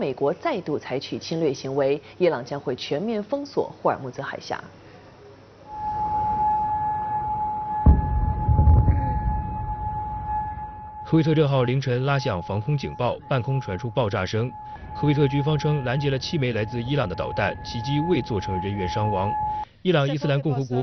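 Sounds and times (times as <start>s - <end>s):
speech: 0.0s - 4.8s, 11.1s - 20.8s
low rumbling burst: 5.7s - 19.6s
air raid siren holding a steady tone: 5.7s - 19.7s.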